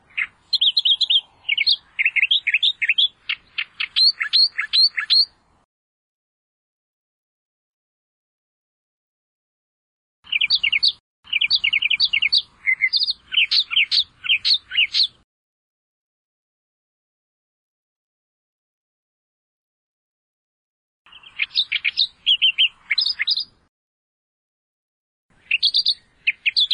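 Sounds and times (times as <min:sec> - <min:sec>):
Australian reed warbler singing rapid harsh repeated notes: 0:00.0 - 0:05.5, 0:10.2 - 0:15.2, 0:21.1 - 0:23.7, 0:25.3 - 0:26.7.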